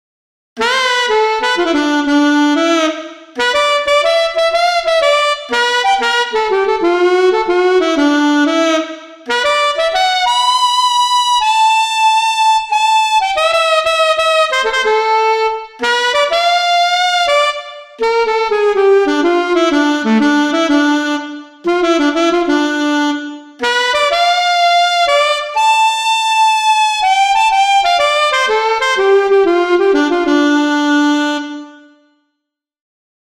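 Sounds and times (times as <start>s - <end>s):
programmed saxophone solo with pitch bends: 0.6s - 32.0s.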